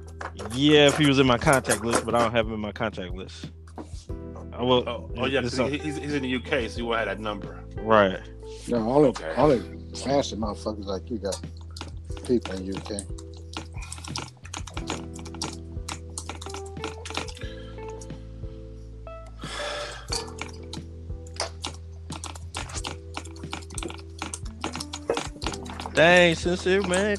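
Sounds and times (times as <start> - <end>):
speech: 0.5 - 3.9, 4.6 - 11.6, 12.3 - 13.2, 26.0 - 27.1
rapid forceful typing on a computer keyboard: 11.6 - 17.5, 21.4 - 27.1.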